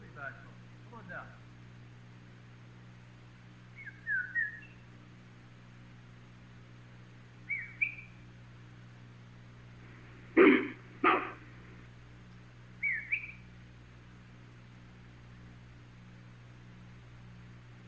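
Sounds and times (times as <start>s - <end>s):
quiet humming background: 0.0s - 17.8s
hunter whistling short rising whistles: 3.8s - 4.8s
harsh loud rasping calls: 7.5s - 8.2s, 10.3s - 11.8s, 12.8s - 13.5s.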